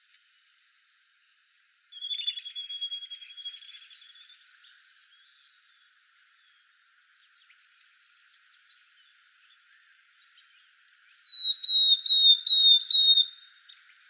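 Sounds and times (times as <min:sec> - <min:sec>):
Northern beardless-tyrannulet calling in Arizona: 0:01.9 - 0:03.9, 0:11.1 - 0:13.4.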